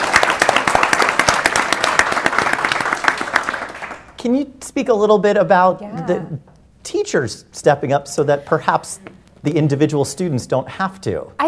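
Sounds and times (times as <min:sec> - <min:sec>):
audience applause: 0:00.0 - 0:04.2
speech: 0:04.2 - 0:11.4.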